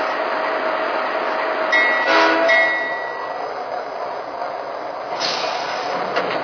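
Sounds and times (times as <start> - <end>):
passenger train idling at a station: 0.0 - 6.4
short hiss of air: 5.1 - 6.0.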